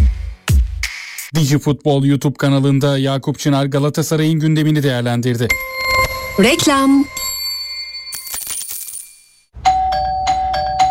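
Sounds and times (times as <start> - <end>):
speech: 1.4 - 5.8, 6.4 - 7.2
sustained bright tone: 5.5 - 8.3
doorbell ringing: 5.5 - 10.9
metallic jingling and clinks: 6.4 - 9.5.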